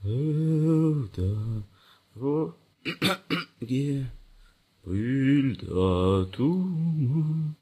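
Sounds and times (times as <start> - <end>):
person humming: 0.0 - 2.6, 4.9 - 7.6.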